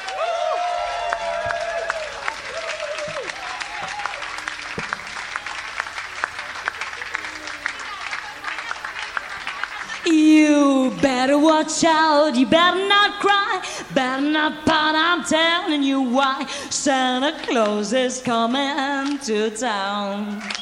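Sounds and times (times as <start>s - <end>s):
audience applause welcoming a Santa Claus act: 0.0s - 10.4s
speech: 11.6s - 20.5s.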